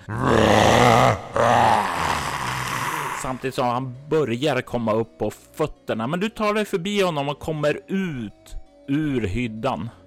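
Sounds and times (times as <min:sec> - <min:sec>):
man's voice bellowing a guttural inhuman roar: 0:00.0 - 0:03.6
speech: 0:00.1 - 0:00.4, 0:03.4 - 0:10.0.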